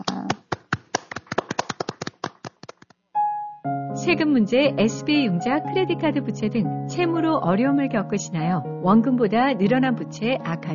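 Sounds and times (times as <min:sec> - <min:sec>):
sparse audience clapping after a talk: 0:00.0 - 0:03.0
speech: 0:04.0 - 0:10.7.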